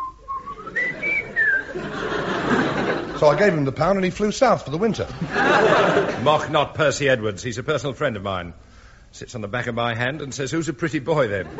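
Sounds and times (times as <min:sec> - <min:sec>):
person whistling a tune: 0:00.0 - 0:01.7
faint hiss: 0:00.0 - 0:11.5
laughter: 0:00.4 - 0:03.8, 0:04.9 - 0:06.8, 0:11.2 - 0:11.5
speech: 0:03.2 - 0:11.5.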